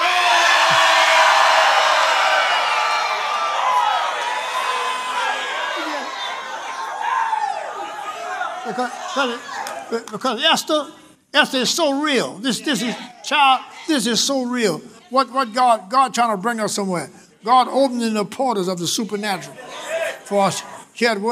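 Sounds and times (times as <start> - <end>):
large crowd screaming and cheering at a Christian church service: 0.0 - 9.9
speech: 8.8 - 21.2.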